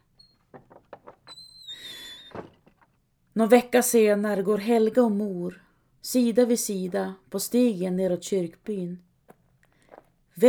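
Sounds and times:
door of an empty farmstead creaking on its hinges as it sways: 0:00.0 - 0:03.0
door of an empty farmstead knocking and rattling: 0:00.4 - 0:02.8
speech: 0:03.4 - 0:09.1.

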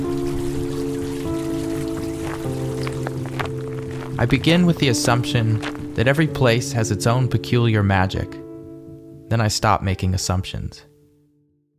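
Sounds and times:
water feature trickling into small overgrown pond in Portland Oregon: 0:00.0 - 0:04.5
speech: 0:04.2 - 0:08.4, 0:09.3 - 0:10.9.

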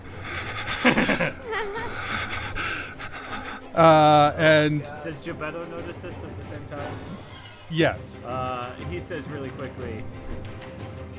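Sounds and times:
laughter: 0:00.0 - 0:06.1
person imitating heavy panicked breathing with ragged gasping huffs: 0:00.1 - 0:04.2
speech: 0:03.8 - 0:11.1.

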